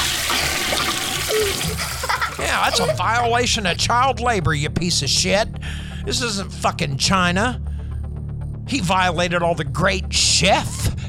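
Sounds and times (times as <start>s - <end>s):
toilet flushing: 0.0s - 3.0s
laughter: 1.3s - 3.9s
speech: 2.6s - 7.7s, 8.7s - 10.9s.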